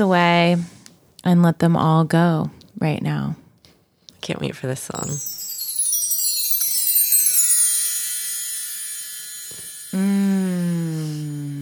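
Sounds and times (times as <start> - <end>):
speech: 0.0 - 3.4, 4.2 - 5.4, 9.9 - 10.4
ringing chimes: 5.0 - 11.6.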